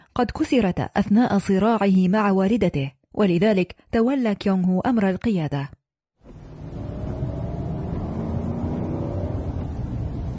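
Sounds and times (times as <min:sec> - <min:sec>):
speech: 0:00.2 - 0:05.8
car engine revving as the vehicle accelerates: 0:06.3 - 0:10.3.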